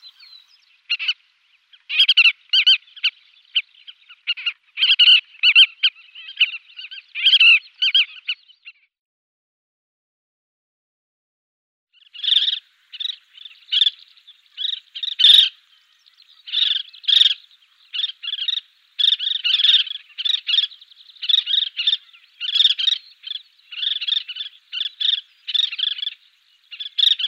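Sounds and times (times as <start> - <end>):
collared pratincole calls: 0.0 - 8.8, 12.0 - 27.2.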